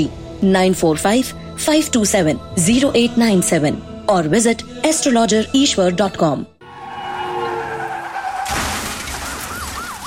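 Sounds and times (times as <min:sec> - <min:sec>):
speech: 0:00.0 - 0:06.5
car tires screeching in a long skid: 0:06.6 - 0:10.0
wailing siren: 0:06.6 - 0:10.0
loud car crash: 0:06.7 - 0:10.0
shattering glass in a car crash: 0:08.4 - 0:10.0.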